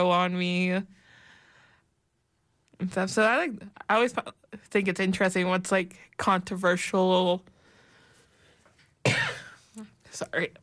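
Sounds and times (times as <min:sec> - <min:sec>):
speech: 0:00.0 - 0:01.0, 0:02.8 - 0:07.5, 0:09.0 - 0:10.6
throat clearing: 0:09.0 - 0:09.9.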